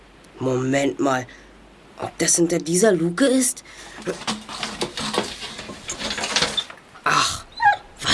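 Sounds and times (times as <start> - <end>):
speech: 0.4 - 1.4, 2.0 - 4.6
rustling: 3.7 - 7.1
clattering: 3.8 - 7.0
dogs whimpering: 7.4 - 8.0.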